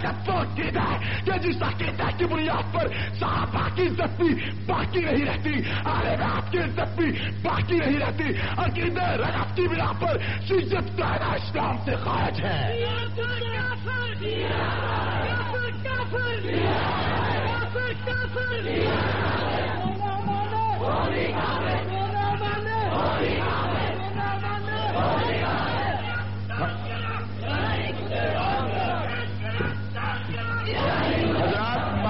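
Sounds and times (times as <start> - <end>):
speech: 0.1 - 17.2, 20.8 - 24.4, 25.0 - 25.7
crowd at a religious gathering chanting slogans in unison: 14.2 - 15.5, 16.4 - 17.8, 18.5 - 32.0.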